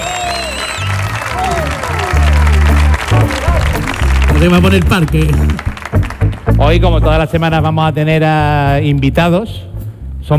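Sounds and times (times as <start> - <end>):
audience members whooping: 0.0 - 4.8
studio audience applauding and cheering at a variety show taping: 0.0 - 6.9
speech: 4.4 - 9.7.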